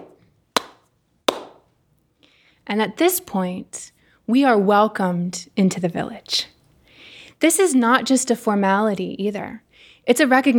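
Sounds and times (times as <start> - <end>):
ceremonial hand claps closing a Fijian welcome ceremony: 0.0 - 1.7
speech: 2.7 - 6.6, 7.4 - 10.5.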